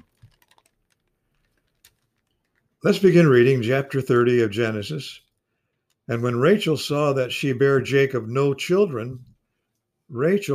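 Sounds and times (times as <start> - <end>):
thin Bible pages turning: 0.0 - 2.4
speech: 2.8 - 5.2, 6.1 - 9.3, 10.1 - 10.5.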